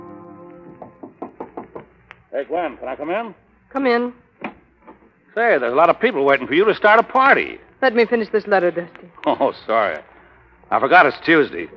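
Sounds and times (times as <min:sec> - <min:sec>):
continuous tonal like soft music: 0:00.0 - 0:01.2
firm knocking on a door: 0:00.8 - 0:01.9
speech: 0:02.3 - 0:04.2, 0:05.3 - 0:10.1, 0:10.7 - 0:11.7.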